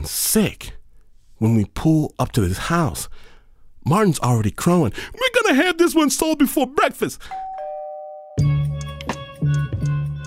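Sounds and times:
speech: 0.0 - 0.7, 1.4 - 7.5
doorbell ding-dong chime with ringing harmonic tones: 7.3 - 8.6.

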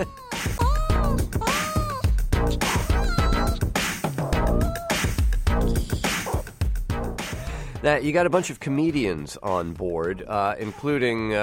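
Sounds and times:
cat meowing in a sung melodic pattern: 0.0 - 2.1, 2.7 - 3.6, 4.4 - 5.1
busy loud music track with drums and instruments: 0.0 - 11.4
speech: 7.8 - 11.4.

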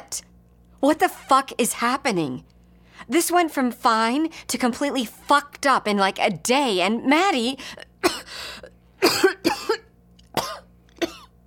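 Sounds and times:
speech: 0.1 - 9.3
harsh painful coughing turning into gagging: 7.8 - 11.4.

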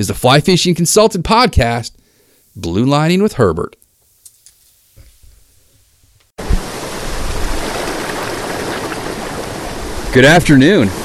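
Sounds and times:
speech: 0.0 - 2.0, 2.6 - 3.8, 10.1 - 11.0
flowing mountain river: 6.4 - 11.0.

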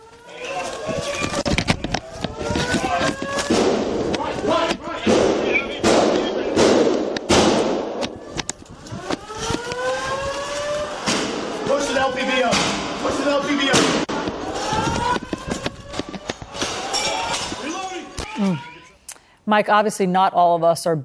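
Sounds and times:
heavy hurried footsteps on stairs: 0.0 - 18.1
people shouting: 0.2 - 1.6, 2.3 - 6.5, 11.7 - 15.2, 16.3 - 18.9
gunshots: 0.8 - 17.7
speech: 19.5 - 21.0.

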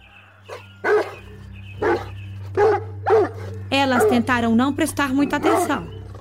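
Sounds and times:
large dog barking angrily: 1.8 - 4.3, 5.4 - 6.1
speech: 3.8 - 6.0.

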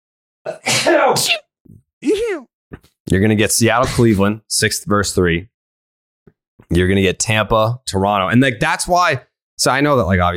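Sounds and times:
speech: 0.4 - 1.4, 2.0 - 5.5, 6.6 - 10.3
loud sneeze: 0.5 - 2.5
person groaning: 2.0 - 2.5.

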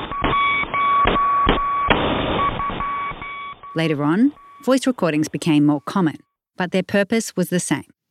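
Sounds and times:
crackling radio static: 0.0 - 6.2
high-pitched Morse code beeps over radio: 0.0 - 6.4
speech: 3.8 - 7.9.

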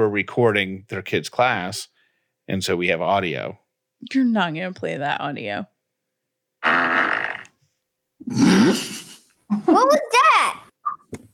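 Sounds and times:
speech: 0.0 - 1.9, 2.5 - 5.7, 6.6 - 7.1, 8.2 - 9.0, 9.6 - 10.2
fart: 6.6 - 7.6, 8.2 - 9.0.

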